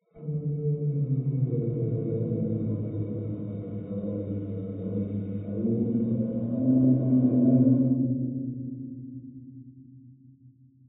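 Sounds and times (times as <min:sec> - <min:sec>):
animatronic moan: 0:00.2 - 0:08.1.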